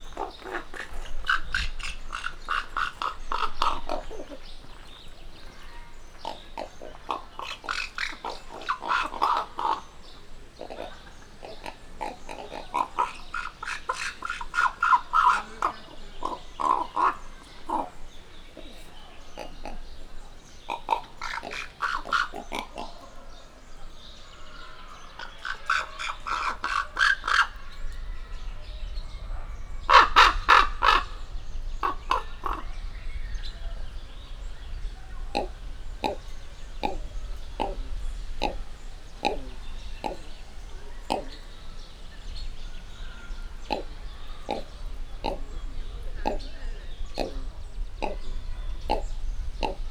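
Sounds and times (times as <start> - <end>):
human-raised raven in Miskolc zoo: 0.0 - 49.8.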